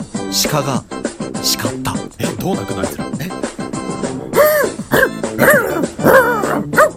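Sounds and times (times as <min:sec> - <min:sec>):
speech: 0:00.4 - 0:03.6
dog barking: 0:04.3 - 0:06.9.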